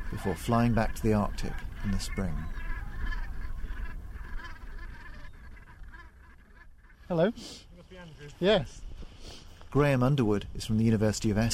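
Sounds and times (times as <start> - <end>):
large flock of Brent geese honking: 0.0 - 8.4
speech: 0.2 - 2.7, 7.1 - 11.5.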